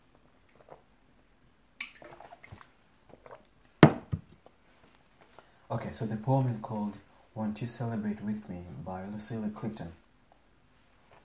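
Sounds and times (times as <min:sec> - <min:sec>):
person drinking water: 0:00.0 - 0:01.3, 0:01.9 - 0:03.6
speech: 0:05.7 - 0:10.0.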